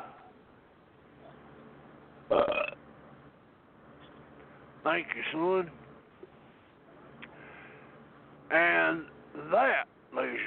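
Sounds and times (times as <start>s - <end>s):
loud raspy gurgling belch: 2.3s - 2.8s
speech: 4.8s - 5.8s, 8.5s - 10.4s.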